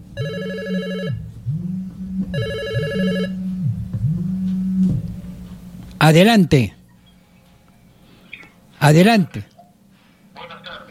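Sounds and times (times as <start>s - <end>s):
telephone ringing with an incoming call: 0.1s - 1.3s, 2.3s - 3.4s
low wavering tone: 0.8s - 5.9s
speech: 6.1s - 6.8s, 8.8s - 9.5s.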